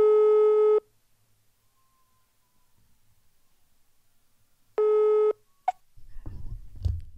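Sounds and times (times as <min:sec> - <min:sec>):
ringback tone of an outgoing telephone call: 0:00.0 - 0:00.8, 0:04.8 - 0:05.4
rustling rumbling noise as the telephone line is picked up: 0:06.0 - 0:07.1.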